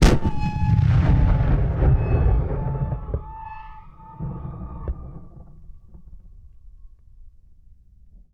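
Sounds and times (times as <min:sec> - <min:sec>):
period combat cannon blast: 0:00.0 - 0:05.7.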